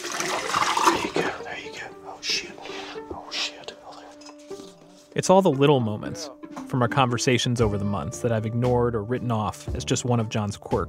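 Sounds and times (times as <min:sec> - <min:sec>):
potassium cyanide liquid pouring into a bucket: 0:00.0 - 0:01.4
speech: 0:05.2 - 0:10.8.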